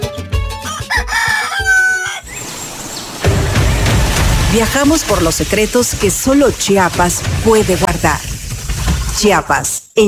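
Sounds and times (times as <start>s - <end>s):
miniature Aztec bantam rooster crowing: 0.6s - 4.2s
speech: 4.5s - 8.3s, 9.2s - 10.0s.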